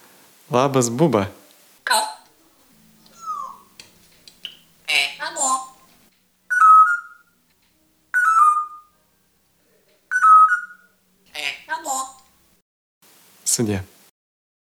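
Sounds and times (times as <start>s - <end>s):
speech: 0.5s - 1.4s, 13.6s - 13.9s
parrot chirpy vocal sounds: 1.9s - 9.0s, 9.6s - 12.4s
pet parrot whistling short clear calls: 1.9s - 12.5s.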